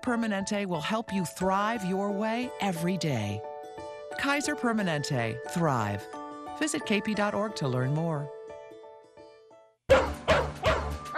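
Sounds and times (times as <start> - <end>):
speech: 0.0 - 3.5, 4.2 - 8.4
dog barking: 9.9 - 11.1.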